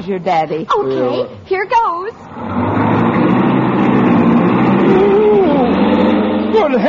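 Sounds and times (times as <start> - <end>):
speech: 0.0 - 2.8, 6.6 - 6.8
car engine starting and revving: 2.2 - 6.8.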